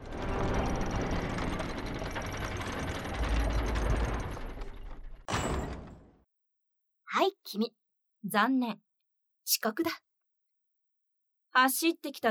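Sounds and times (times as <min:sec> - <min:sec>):
main school gate sliding shut with a rolling rattling rumble: 0:00.0 - 0:06.0
speech: 0:07.2 - 0:08.9, 0:09.5 - 0:10.0, 0:11.6 - 0:12.2.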